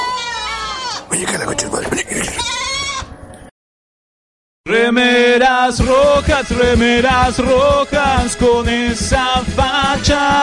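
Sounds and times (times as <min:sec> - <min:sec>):
goats bleating with long quavering cries: 0:00.0 - 0:01.0, 0:02.2 - 0:03.1
speech: 0:01.1 - 0:02.1, 0:05.0 - 0:10.4.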